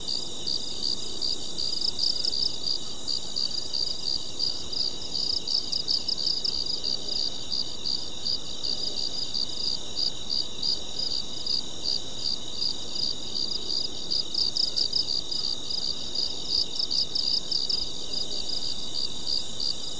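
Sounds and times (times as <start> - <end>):
forest at night: 0.0 - 19.9.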